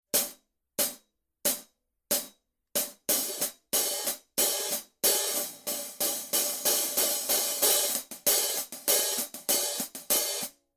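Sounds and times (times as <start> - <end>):
16 hi-hat pattern on Paiste Giant Beat hi-hat: 2.9 - 10.5.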